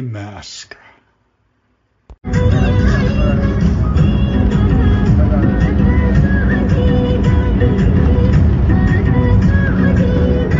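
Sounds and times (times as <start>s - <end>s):
speech: 0.0s - 0.8s
small crowded van engine drone on road from Kathmandu to Desi Sahar: 2.2s - 10.5s.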